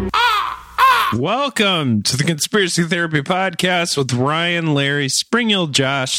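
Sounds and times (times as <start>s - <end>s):
raven cawing: 0.1s - 1.2s
speech: 1.2s - 6.1s.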